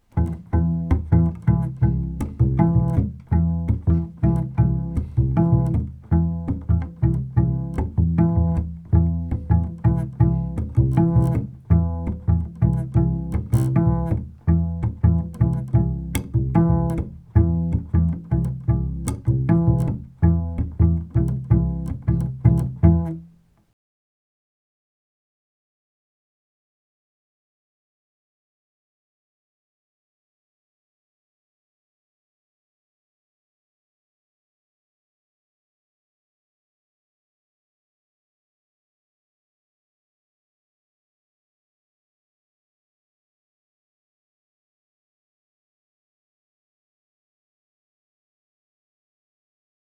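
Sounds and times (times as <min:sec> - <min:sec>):
soft groovy double stops: 0:00.1 - 0:23.2.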